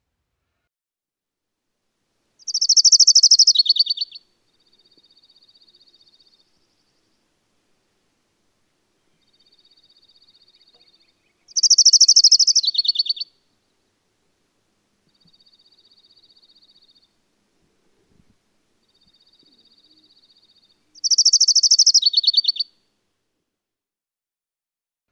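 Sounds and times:
orange-crowned warbler trill song: 0:02.5 - 0:04.2, 0:10.9 - 0:13.3, 0:21.0 - 0:22.7.

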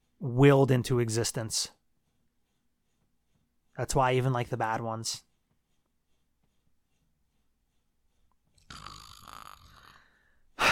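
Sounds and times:
speech: 0:00.2 - 0:01.8, 0:03.8 - 0:05.3
person snoring with a long rattling snore: 0:08.6 - 0:10.7.

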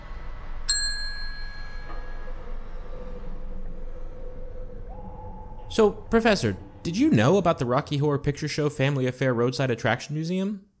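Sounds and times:
low steady hum: 0:00.0 - 0:09.0
small service desk bell ding: 0:00.7 - 0:02.3
speech: 0:05.8 - 0:10.7.

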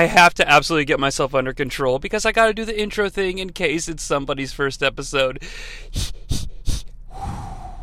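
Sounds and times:
speech: 0:00.0 - 0:06.2
quick forceful breaths in a breathing exercise: 0:05.4 - 0:07.8
longer softer exhale with a faint whistling tone: 0:07.1 - 0:07.8.

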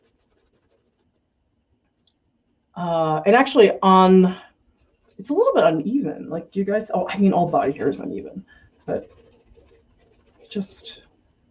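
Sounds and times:
pastel pencils drawing and blending on paper: 0:00.0 - 0:01.0, 0:07.2 - 0:10.6
speech: 0:02.8 - 0:04.4, 0:05.2 - 0:09.2, 0:10.5 - 0:11.0.

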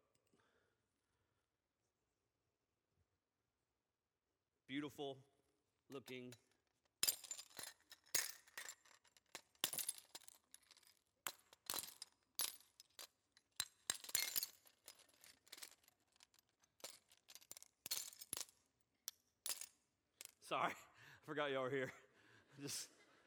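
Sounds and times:
speech: 0:04.7 - 0:05.3, 0:05.9 - 0:06.5, 0:20.5 - 0:23.0
glass breaking and clinking: 0:07.0 - 0:15.8
laughter: 0:21.6 - 0:23.2.

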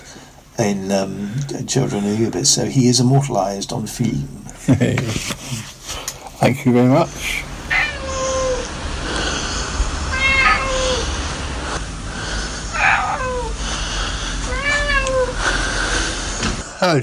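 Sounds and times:
speech: 0:00.6 - 0:05.7, 0:06.4 - 0:07.5, 0:16.8 - 0:17.0
low rumble: 0:06.5 - 0:16.6
cat meowing: 0:07.7 - 0:08.7, 0:10.1 - 0:11.1, 0:12.7 - 0:13.6, 0:14.5 - 0:15.4.

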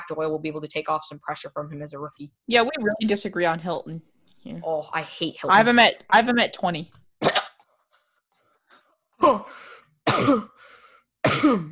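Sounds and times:
speech: 0:00.1 - 0:07.0, 0:09.2 - 0:10.5, 0:11.4 - 0:11.7
harsh loud coughing fit: 0:07.2 - 0:07.6, 0:09.2 - 0:10.6, 0:11.2 - 0:11.7.

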